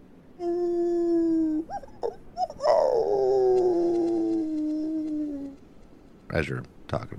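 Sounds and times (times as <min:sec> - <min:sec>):
wolves howling on a clear night: 0:00.4 - 0:05.6
wolf yips: 0:01.6 - 0:04.4
speech: 0:06.4 - 0:07.1.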